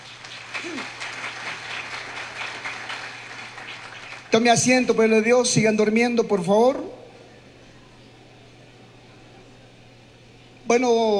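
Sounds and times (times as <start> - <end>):
audience applauding in a reverberant room: 0.0 - 4.6
speech: 4.3 - 7.0, 10.8 - 11.1.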